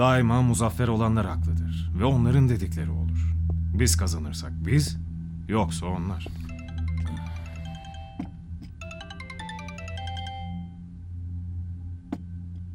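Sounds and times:
speech: 0.0s - 6.5s
low hum: 0.0s - 12.7s
phone ringing with a melodic electronic ringtone: 6.4s - 10.9s.

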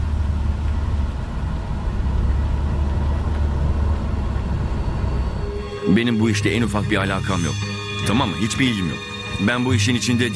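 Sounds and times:
road and engine roar from a car moving at speed: 0.0s - 5.9s
speech: 5.9s - 10.3s.

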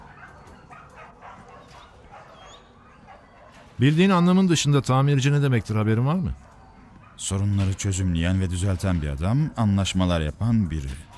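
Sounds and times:
dogs whimpering at an animal shelter: 0.0s - 3.7s
crowd of dogs barking and yipping at an animal shelter: 0.0s - 3.8s, 6.4s - 7.4s, 11.0s - 11.1s
speech: 3.8s - 6.5s, 7.2s - 11.1s.

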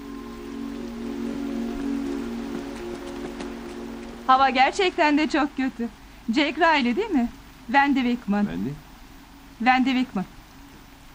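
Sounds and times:
low hum: 0.0s - 11.1s
rain pattering on a hard surface: 0.6s - 5.4s
speech: 4.3s - 8.8s, 9.6s - 10.4s.

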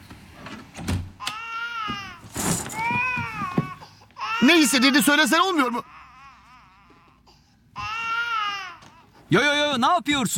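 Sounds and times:
baby crying in a high-pitched wail: 1.2s - 9.2s
speech: 4.4s - 6.0s, 9.3s - 10.3s.

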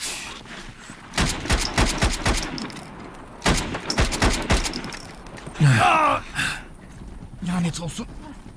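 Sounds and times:
gunfire covering fire in a combat scene: 1.1s - 4.9s
speech: 7.4s - 8.2s.

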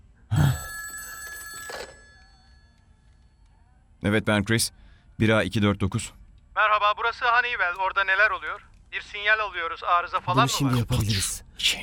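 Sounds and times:
telephone bell ringing for an incoming call: 0.3s - 3.3s
speech: 4.0s - 6.2s, 6.9s - 11.8s.

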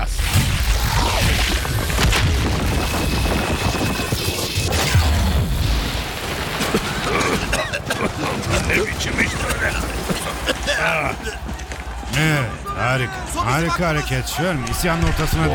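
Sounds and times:
explosion blowing up a back wall: 0.0s - 10.6s
laughter: 6.8s - 15.5s
speech: 12.2s - 15.5s.

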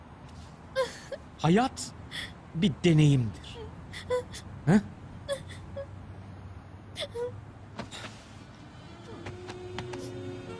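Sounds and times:
person crying and wailing: 0.8s - 1.2s, 3.6s - 5.9s
speech: 1.2s - 3.5s, 4.1s - 5.0s.

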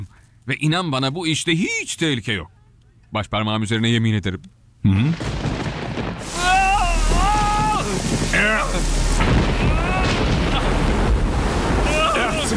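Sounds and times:
speech: 0.5s - 5.4s
heavy rain in a storm: 5.2s - 12.5s
low thunder rumble: 5.2s - 12.5s.

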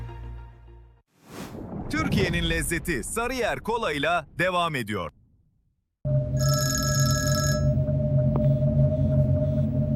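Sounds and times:
speech: 1.9s - 5.2s
telephone ringing with a bright, trilling electronic ring: 6.1s - 7.8s
steady low hum: 6.1s - 9.9s.

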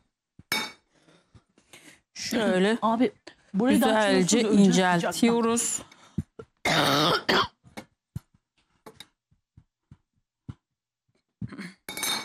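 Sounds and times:
speech: 2.2s - 5.9s
dry tickly allergy coughing: 6.6s - 7.8s.

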